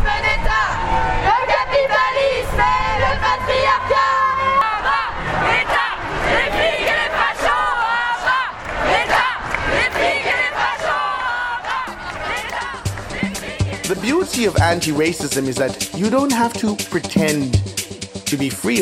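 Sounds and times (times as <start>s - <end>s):
large crowd of marchers shouting and yelling: 0.0s - 13.9s
speech: 14.4s - 18.8s.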